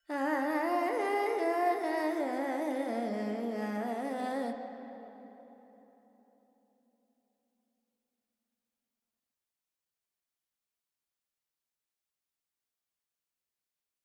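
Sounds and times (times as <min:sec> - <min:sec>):
female Carnatic vocal alaps in pentatonic G: 0:00.0 - 0:04.9.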